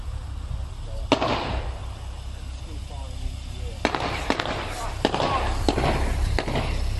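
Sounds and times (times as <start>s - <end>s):
rumbling noise: 0.0s - 6.9s
gunshots at a dockside in Chatham, Kent: 1.1s - 1.8s, 3.8s - 6.9s.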